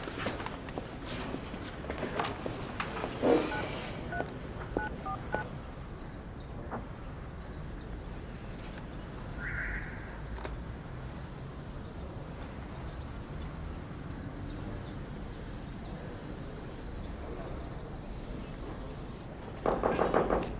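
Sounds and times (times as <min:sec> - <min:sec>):
hiss: 0:00.0 - 0:20.5
telephone keypad beeps dialing to book a hotel: 0:03.4 - 0:05.5.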